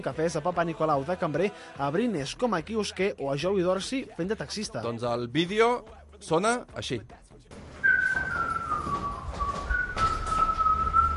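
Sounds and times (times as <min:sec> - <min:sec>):
speech: 0:00.0 - 0:07.5
football fan whistling a football club anthem: 0:07.8 - 0:11.1.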